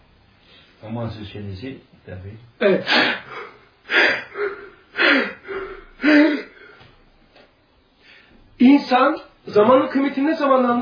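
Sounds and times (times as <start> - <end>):
speech: 0.8 - 3.4, 8.9 - 10.8
wheezy exhale: 2.9 - 6.9
person imitating breathlessness with rasping gasps: 2.9 - 7.0.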